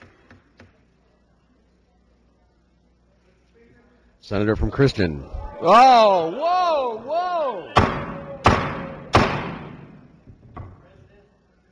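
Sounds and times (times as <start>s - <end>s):
speech: 4.3s - 7.8s
gavel banging during a state Senate roll-call vote: 7.8s - 10.7s.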